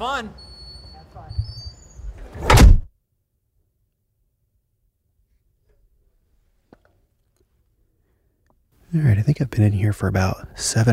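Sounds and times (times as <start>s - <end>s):
speech: 0.0s - 0.5s, 8.9s - 10.9s
heavy doors of an anechoic chamber shutting: 1.4s - 2.9s.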